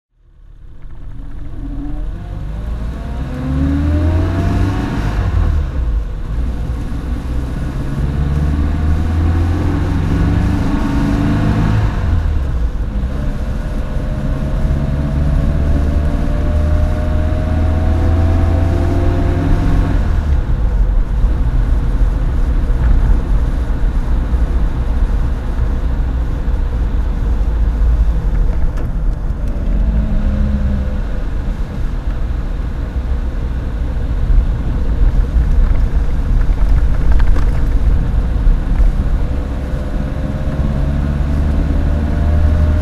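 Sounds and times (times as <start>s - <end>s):
1952 Riley RMA 1.5 litre saloon engine while driving: 0.1s - 42.7s.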